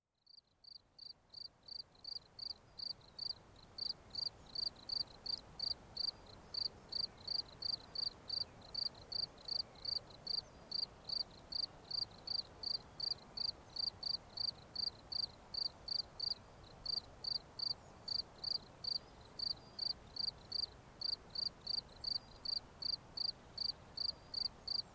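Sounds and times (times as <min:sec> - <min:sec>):
cricket chirping: 0:00.2 - 0:24.9.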